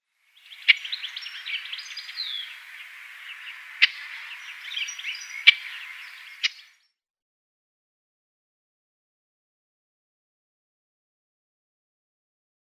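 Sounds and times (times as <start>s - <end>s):
Olive-tree Warbler calls: 0.4s - 6.9s.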